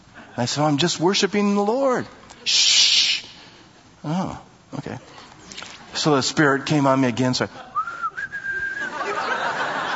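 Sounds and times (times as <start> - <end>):
speech: 0.4 - 2.7, 4.0 - 5.2, 6.0 - 7.7
person whistling a song: 7.8 - 8.9
laughter: 8.6 - 9.9.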